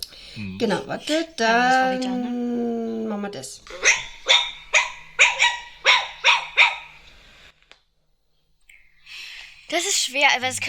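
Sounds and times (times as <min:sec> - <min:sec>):
speech: 0:00.4 - 0:04.0, 0:09.7 - 0:10.6
Chihuahua yapping barks: 0:03.7 - 0:07.0.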